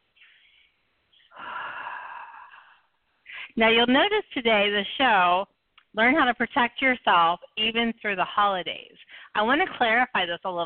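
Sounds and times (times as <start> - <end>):
deep breath drawn by a person settling in: 0.2 - 3.6
speech: 3.6 - 10.6.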